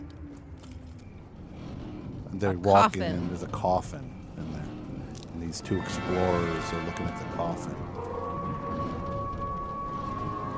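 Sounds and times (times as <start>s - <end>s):
dense rumbling noise: 0.0s - 10.5s
speech: 2.4s - 4.6s, 5.5s - 7.9s
wolf howling at night: 7.6s - 10.5s.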